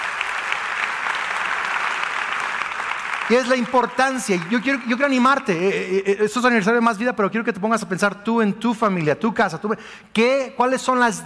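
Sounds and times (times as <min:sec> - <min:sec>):
large church audience applauding: 0:00.0 - 0:06.0
speech: 0:03.3 - 0:11.2.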